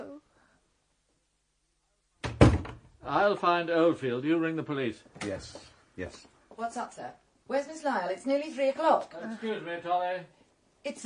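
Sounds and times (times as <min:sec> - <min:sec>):
room door shutting with a thud: 0:02.2 - 0:02.9
speech: 0:03.1 - 0:11.0.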